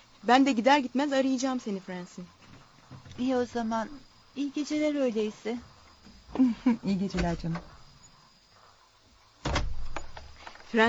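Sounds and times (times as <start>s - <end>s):
speech: 0.2s - 2.4s, 3.2s - 5.7s, 6.3s - 7.7s
door lock turned with a firm mechanical clunk: 9.4s - 10.3s.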